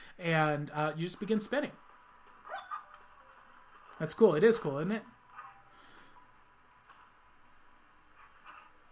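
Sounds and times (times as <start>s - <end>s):
speech: 0.2s - 1.9s, 4.0s - 5.2s
dog whimpering and yipping: 2.5s - 3.0s, 5.3s - 5.7s.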